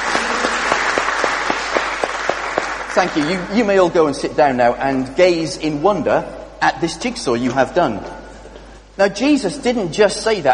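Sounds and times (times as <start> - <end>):
group applauding for a finished jigsaw puzzle: 0.0 - 3.5
speech: 3.0 - 8.2, 9.0 - 10.5.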